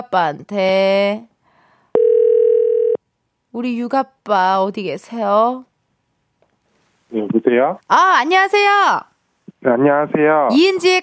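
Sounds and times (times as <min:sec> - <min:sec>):
speech: 0:00.0 - 0:01.3, 0:03.6 - 0:05.7, 0:07.1 - 0:11.0
telephone ringback tone while placing a call: 0:01.9 - 0:03.0.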